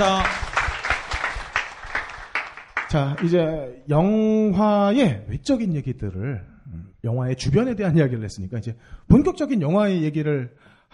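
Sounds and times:
speech: 0.0s - 0.4s, 2.9s - 10.9s
applause from a group: 0.0s - 3.4s.

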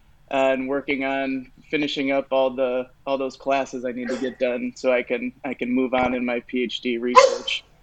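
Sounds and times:
speech: 0.3s - 7.7s
dog barking sharply: 7.2s - 7.6s.

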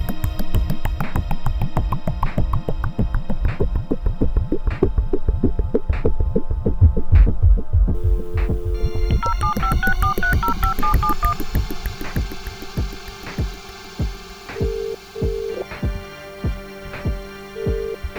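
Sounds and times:
steady low thumping pulse: 0.0s - 18.1s
longer flat telephone tones: 8.0s - 18.1s
short telephone keypad beeps: 8.4s - 12.3s.

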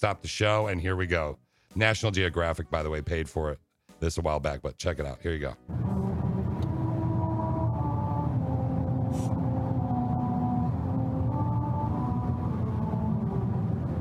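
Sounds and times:
speech: 0.0s - 6.4s
car driving over road at 45 miles an hour heard from inside the cabin: 5.7s - 14.0s
droning tones shifting pitch: 5.7s - 14.0s.

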